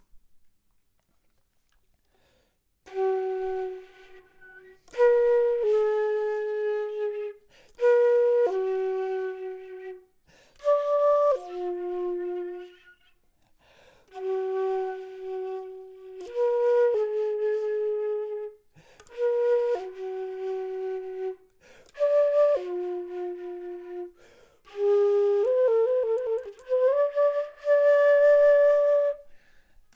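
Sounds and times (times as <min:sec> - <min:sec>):
flute: 0:02.8 - 0:13.4, 0:14.1 - 0:29.9.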